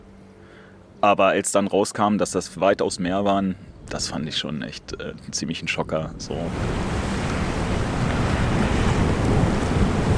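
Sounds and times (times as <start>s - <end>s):
speech: 1.0s - 7.0s
gusty wind buffeting the microphone on a roof terrace: 3.5s - 10.1s
sea waves rolling onto the shore of a small island: 6.3s - 10.1s.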